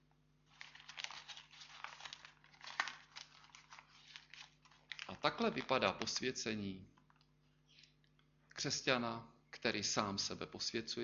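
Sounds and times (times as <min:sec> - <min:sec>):
paper crumpling while wrapping an object by hand: 0:00.5 - 0:06.2
speech: 0:05.1 - 0:07.0, 0:08.6 - 0:11.0.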